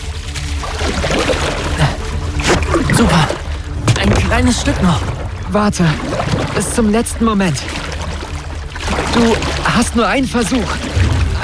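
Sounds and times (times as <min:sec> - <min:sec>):
oar used as a paddle splashing in water beside a boat: 0:00.0 - 0:11.4
speech: 0:03.0 - 0:03.4, 0:04.4 - 0:07.8, 0:09.2 - 0:11.4.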